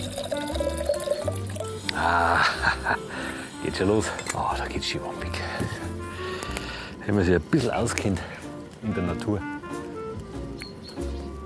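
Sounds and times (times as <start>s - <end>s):
water pouring into a container: 0.0s - 1.8s
speech: 2.0s - 2.8s, 3.8s - 5.9s, 7.1s - 9.5s
laughter: 2.0s - 3.3s.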